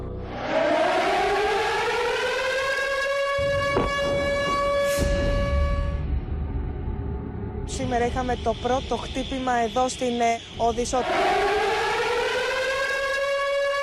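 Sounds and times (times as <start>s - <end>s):
air raid siren wailing over Lviv city in Ukraine: 0.0s - 13.8s
speech: 7.9s - 11.4s.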